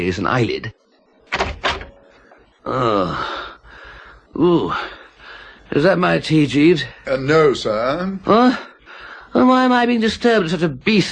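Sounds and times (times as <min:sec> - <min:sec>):
speech: 0:00.0 - 0:00.8, 0:02.6 - 0:03.4, 0:04.4 - 0:05.0, 0:05.7 - 0:08.7, 0:09.3 - 0:11.1
door creaking as it swings open: 0:01.3 - 0:02.0.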